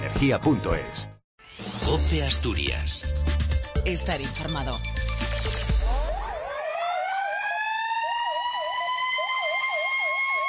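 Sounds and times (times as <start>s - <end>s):
speech: 0.2s - 1.2s, 1.9s - 3.2s, 3.8s - 5.6s
emergency sirens wailing in mourning: 5.9s - 10.4s.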